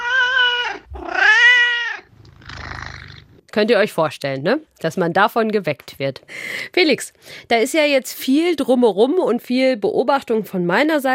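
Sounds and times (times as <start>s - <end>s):
tomcat meowing: 0.0s - 3.1s
speech: 3.6s - 11.1s.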